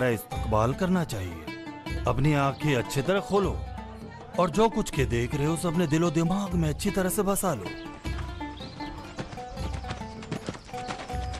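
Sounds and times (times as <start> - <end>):
speech: 0.0 - 1.4, 2.0 - 3.7, 4.4 - 7.9
horse hooves clip-clopping: 7.6 - 11.3.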